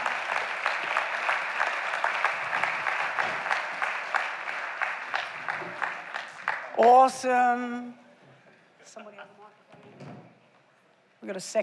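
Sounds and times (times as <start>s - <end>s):
room full of people applauding: 0.0s - 7.2s
speech: 6.8s - 8.0s, 11.2s - 11.6s.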